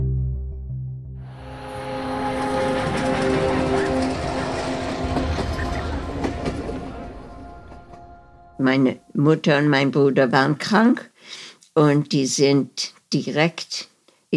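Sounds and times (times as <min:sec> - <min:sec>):
train pulling into a station in St. Gallen: 0:01.3 - 0:09.0
speech: 0:08.6 - 0:13.9.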